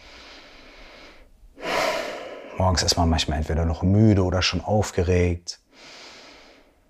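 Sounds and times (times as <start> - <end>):
deep breathing during a guided seated meditation: 0.0 - 2.6, 5.6 - 6.8
speech: 2.6 - 6.0.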